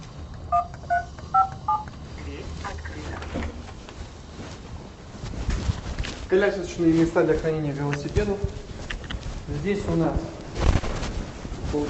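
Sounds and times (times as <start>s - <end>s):
noise: 0.0s - 11.8s
entrance door intercom keypad beeps in an apartment building: 0.5s - 2.0s
speech: 6.3s - 8.6s, 9.6s - 10.4s.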